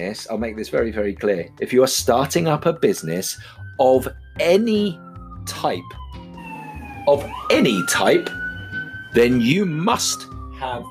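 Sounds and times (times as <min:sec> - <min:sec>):
speech: 0:00.0 - 0:06.0, 0:07.1 - 0:08.4, 0:09.1 - 0:10.8
ambulance siren passing: 0:02.2 - 0:10.8.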